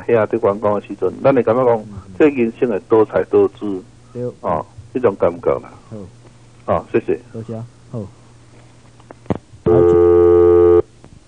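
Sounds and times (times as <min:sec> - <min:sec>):
speech: 0:00.0 - 0:08.2
quiet hum: 0:00.0 - 0:11.2
telephone line ringing during radio call-in: 0:09.7 - 0:10.8.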